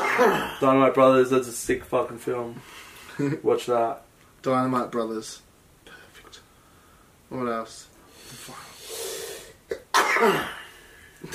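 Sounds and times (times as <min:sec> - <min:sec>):
person coughing: 0:00.0 - 0:00.7, 0:09.7 - 0:11.3
speech: 0:00.2 - 0:05.4, 0:07.3 - 0:08.7, 0:10.2 - 0:10.6.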